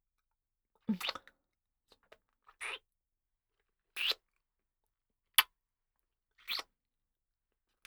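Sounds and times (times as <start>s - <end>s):
soft wet kissing sounds on the mouth and cheeks: 1.0s - 1.2s, 4.0s - 4.2s, 6.4s - 6.7s.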